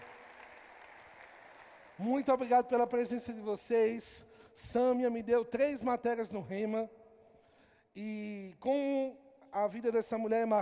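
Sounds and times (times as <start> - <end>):
crowd applauding: 0.0 - 2.1
speech: 2.0 - 7.0, 8.0 - 10.5.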